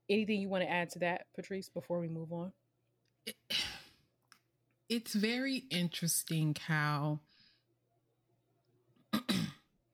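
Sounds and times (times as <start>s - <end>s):
speech: 0.1s - 2.6s, 3.2s - 3.6s, 4.9s - 7.3s
man clearing throat: 9.2s - 9.6s.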